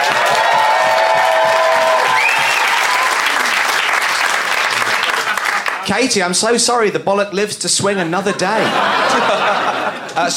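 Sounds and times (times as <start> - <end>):
audience cheers and whistles: 0.0 - 3.6
audience applauding to vote in a debate: 0.0 - 6.1
laughter: 4.7 - 5.9, 8.0 - 10.3
speech: 5.9 - 10.3.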